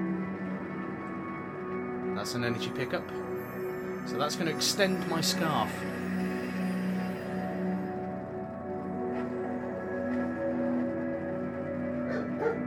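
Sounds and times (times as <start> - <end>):
sustained orchestral music: 0.0 - 12.6
speech: 2.2 - 3.4, 4.0 - 6.2
dog barking: 12.1 - 12.6.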